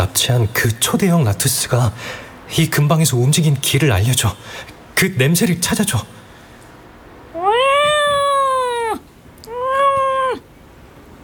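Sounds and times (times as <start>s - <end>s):
speech: 0.1s - 6.2s
large cat meowing: 7.4s - 10.5s.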